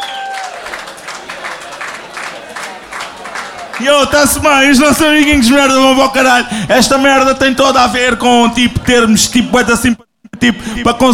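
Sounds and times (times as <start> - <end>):
crowd applauding at a song festival: 0.0 - 4.4
speech: 3.8 - 11.1.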